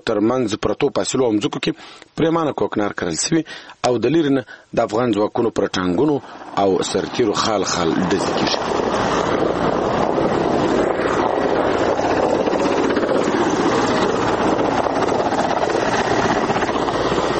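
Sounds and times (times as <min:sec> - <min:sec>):
speech: 0:00.0 - 0:09.9
wind buffeting: 0:05.9 - 0:17.3
Afghan forces Mi-15 military helicopter circling overhead: 0:06.0 - 0:17.3.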